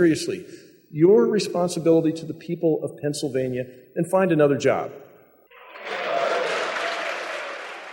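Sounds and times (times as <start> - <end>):
speech: 0.0 - 5.1
lawmakers in Harrisburg Pennsylvania cheering: 5.5 - 7.9
lawmakers in Harrisburg Pennsylvania applauding: 5.6 - 7.9.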